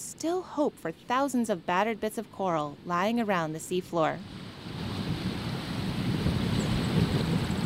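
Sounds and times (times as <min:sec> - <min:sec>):
speech: 0:00.2 - 0:04.8
ocean surf on Puerto Rico's north coast: 0:04.0 - 0:07.6
wind buffeting the microphone on a tall coastal dune near Vega Baja Puerto Rico: 0:04.2 - 0:07.6.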